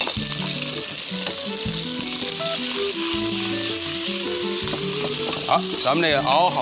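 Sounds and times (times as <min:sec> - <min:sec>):
shrimp with scallion and ginger sizzling in hot oil: 0:00.0 - 0:06.6
speech: 0:05.5 - 0:06.6.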